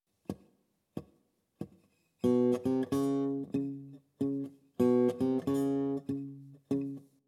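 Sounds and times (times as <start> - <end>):
blues guitar in open tuning: 2.2 - 7.1.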